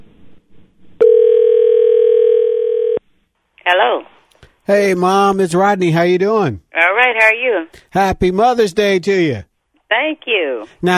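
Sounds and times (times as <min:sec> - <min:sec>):
telephone ringback tone: 0:01.0 - 0:03.0
speech: 0:04.7 - 0:09.5, 0:10.1 - 0:10.9.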